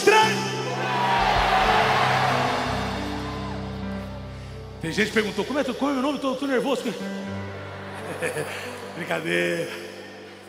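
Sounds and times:
large audience shouting their names at once: 0.7s - 3.9s
speech: 4.8s - 7.5s, 8.2s - 9.9s
laughter: 7.6s - 9.6s.

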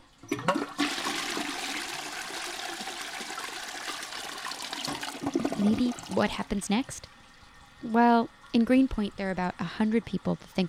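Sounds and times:
toilet flushing and draining: 0.0s - 10.6s
speech: 5.6s - 7.2s, 7.8s - 10.6s.

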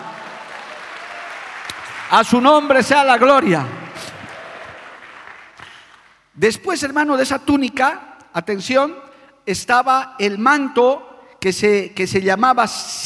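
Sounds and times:
audience applauding: 0.0s - 6.2s
speech: 2.1s - 3.8s, 6.4s - 13.0s
man speaking loudly over clapping: 2.1s - 4.0s, 6.4s - 13.0s.

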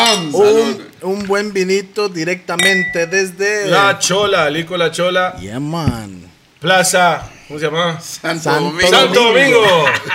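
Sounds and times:
speech: 0.3s - 10.1s
wine glasses clinking in a toast: 2.6s - 3.4s
laughter: 9.4s - 10.1s.

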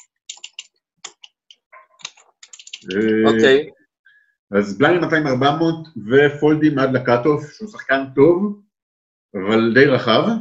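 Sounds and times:
typing notes on a computer keyboard: 0.0s - 3.0s
speech: 2.8s - 3.8s, 4.5s - 8.6s, 9.3s - 10.3s.

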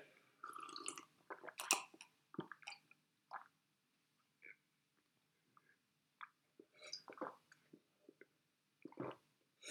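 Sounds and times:
person noisily drinking a glass of tap water in Copenhagen: 0.4s - 3.5s, 6.2s - 9.2s.

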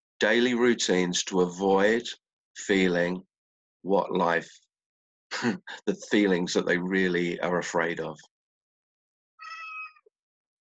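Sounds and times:
speech: 0.2s - 4.6s, 5.3s - 8.3s
cat meowing: 9.4s - 10.0s.

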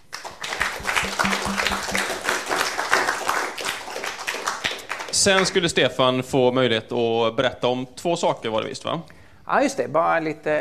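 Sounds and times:
audience applause: 0.1s - 5.0s
speech: 5.2s - 10.5s.

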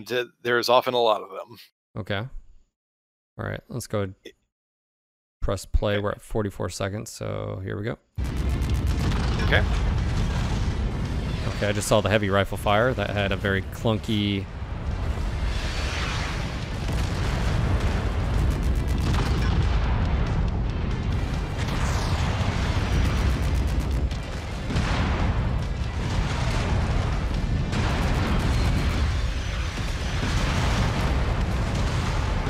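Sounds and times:
speech: 0.0s - 2.4s, 3.4s - 4.4s, 5.4s - 8.5s, 9.5s - 9.9s, 11.5s - 14.6s
incoming heavy artillery explosions with crackling debris: 8.2s - 32.4s.

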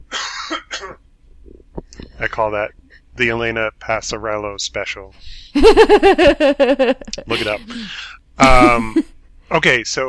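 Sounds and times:
person clearing throat: 0.1s - 1.0s
speech: 2.2s - 10.0s
laughter: 5.6s - 9.0s.

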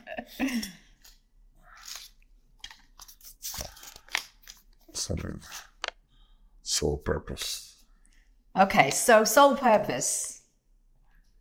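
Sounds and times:
speech: 0.2s - 0.8s, 5.1s - 5.6s, 6.8s - 7.6s, 8.6s - 10.3s
piece of paper rustling as it is picked up and handled: 1.8s - 5.8s.

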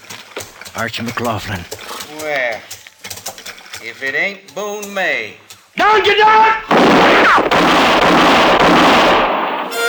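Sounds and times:
speech: 0.8s - 2.8s, 3.8s - 8.6s
gunfire volley during a hold-up shootout in a moonlit clearing: 6.6s - 9.7s.

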